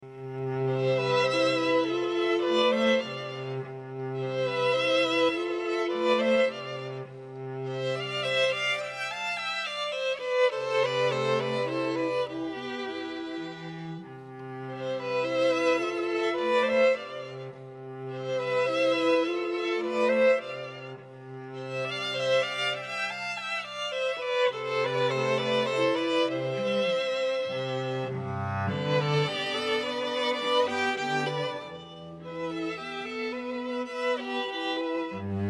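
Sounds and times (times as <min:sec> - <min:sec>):
string trio playing: 0:00.0 - 0:35.4.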